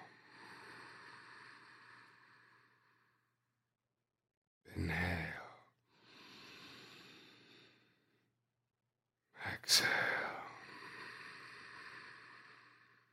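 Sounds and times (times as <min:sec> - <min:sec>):
deep breathing in and out during a guided breathing exercise: 0:00.0 - 0:03.3, 0:05.3 - 0:08.3, 0:09.8 - 0:13.1.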